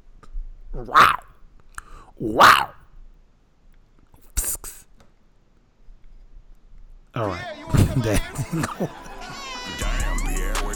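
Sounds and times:
speech: 0.7s - 1.2s, 2.2s - 2.8s, 8.0s - 9.1s
person voicing a cat with yowling bursts and a breathy hiss: 0.8s - 1.3s, 2.2s - 2.8s
laughter: 7.6s - 10.5s.

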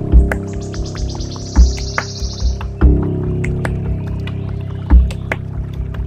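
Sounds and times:
Wood warbler giving a shivering trill: 0.2s - 5.5s.

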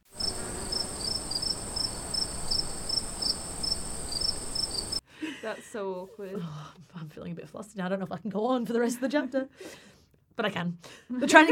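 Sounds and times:
crickets chirping: 0.0s - 5.0s
speech: 5.5s - 11.4s.

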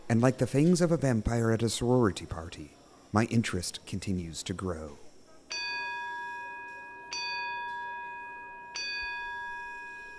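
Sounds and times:
speech: 0.1s - 5.0s
metallic chime strikes signalling a presentation is starting: 5.5s - 10.1s.

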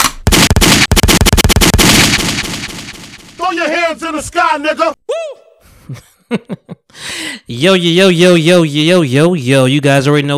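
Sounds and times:
gunshot sound effect played from a soundboard: 0.0s - 4.0s
speech: 3.5s - 10.3s.

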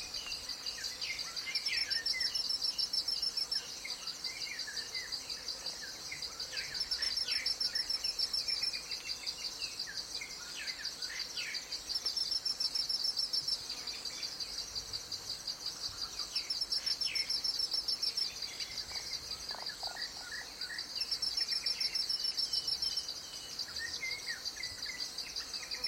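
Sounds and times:
high insect chorus in Congo basin rainforest: 0.0s - 25.8s.

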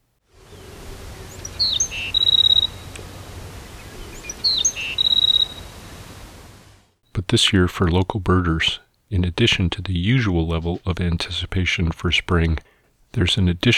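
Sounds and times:
steady hiss: 0.0s - 13.7s
black-throated sparrow singing in a yard: 0.4s - 6.0s
speech: 7.3s - 13.7s.

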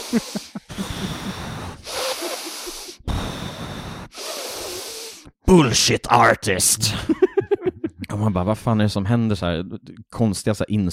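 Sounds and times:
laughter: 0.0s - 3.0s, 6.8s - 8.1s
voice imitating heavy breathing through the nose: 0.0s - 5.4s
speech: 0.1s - 1.1s, 5.5s - 7.3s, 8.2s - 10.9s.

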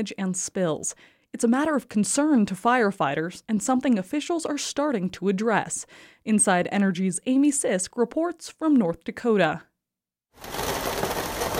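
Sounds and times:
speech: 0.0s - 9.7s
steady rain falling: 10.4s - 11.5s.

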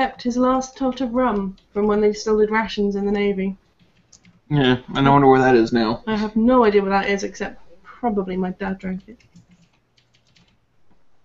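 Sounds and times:
speech: 0.0s - 3.6s, 4.5s - 9.3s
typing on a mechanical keyboard: 0.5s - 4.4s, 8.8s - 10.6s.

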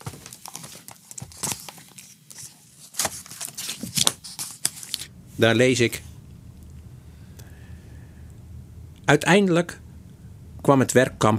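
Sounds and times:
pages of a printed doctoral thesis riffled and turned: 0.0s - 5.1s
speech: 5.4s - 6.1s, 9.1s - 9.8s, 10.7s - 11.3s.

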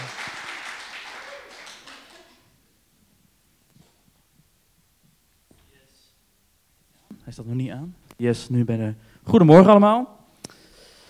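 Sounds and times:
crowd applauding the first speaker at a meeting: 0.0s - 2.6s
speech: 7.2s - 10.2s.

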